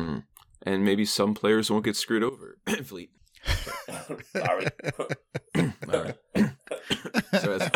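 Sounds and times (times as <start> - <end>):
speech: 0.2 - 7.7
laughter: 3.5 - 7.7
person coughing: 5.5 - 7.7
throaty clearing: 5.5 - 7.7.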